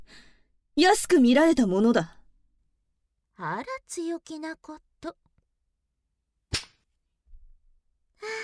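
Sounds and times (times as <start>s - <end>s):
speech: 0.8s - 2.2s, 3.4s - 5.2s, 8.2s - 8.4s
whip crack: 6.5s - 6.8s.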